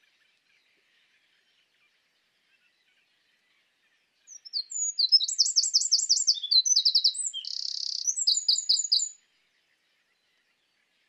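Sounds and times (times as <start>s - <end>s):
Eurasian wren Troglodytes troglodytes song: 4.2s - 9.2s.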